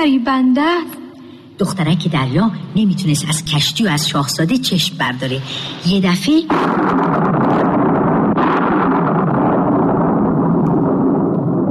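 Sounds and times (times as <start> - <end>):
speech: 0.0 - 1.0, 1.6 - 7.6
roaring wind in a storm at sea around a ship: 6.6 - 11.7.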